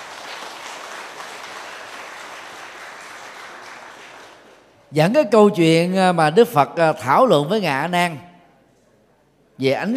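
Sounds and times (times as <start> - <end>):
audience applause: 0.0 - 4.7
speech: 4.9 - 8.3, 9.6 - 9.9.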